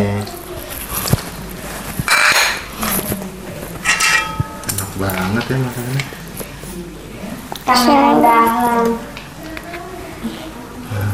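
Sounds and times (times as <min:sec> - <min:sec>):
dishes and cutlery clinking during washing up: 0:01.9 - 0:06.2
scrubbing noise: 0:03.8 - 0:04.6
speech: 0:05.0 - 0:06.2, 0:07.7 - 0:09.1.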